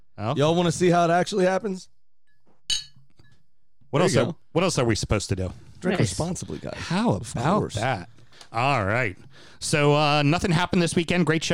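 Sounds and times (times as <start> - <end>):
speech: 0.2 - 2.0, 3.9 - 11.5
glasses clinking in a toast: 2.7 - 3.3.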